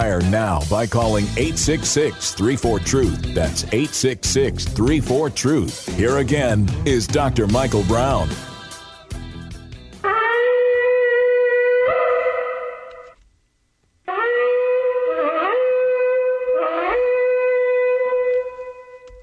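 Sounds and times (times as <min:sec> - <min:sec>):
speech: 0:00.1 - 0:08.5
shofar blasts sounded for Rosh Hashanah: 0:10.0 - 0:13.1, 0:14.1 - 0:19.1.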